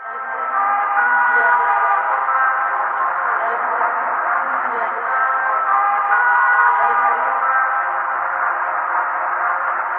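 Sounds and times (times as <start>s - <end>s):
distorted trumpets: 0.0s - 9.9s.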